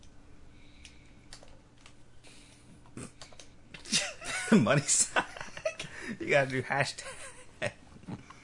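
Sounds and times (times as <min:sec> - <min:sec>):
typing on an awkwardly sized computer keyboard: 0:00.8 - 0:02.0
speech: 0:04.5 - 0:05.2, 0:06.2 - 0:07.8.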